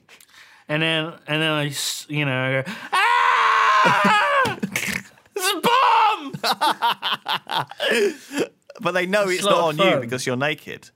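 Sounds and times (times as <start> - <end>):
speech: 0.7 - 3.0, 3.8 - 4.9, 6.5 - 10.9
man screaming at the top of his voice: 2.9 - 4.6, 5.4 - 6.6
laughter: 6.1 - 8.5.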